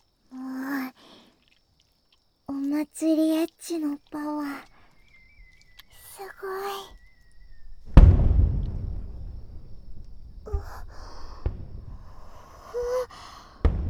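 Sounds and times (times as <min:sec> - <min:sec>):
speech: 0:02.9 - 0:04.0
faint firework whistle: 0:04.8 - 0:12.4
fireworks popping outdoors: 0:05.0 - 0:13.8
fireworks booming outdoors: 0:06.9 - 0:13.8.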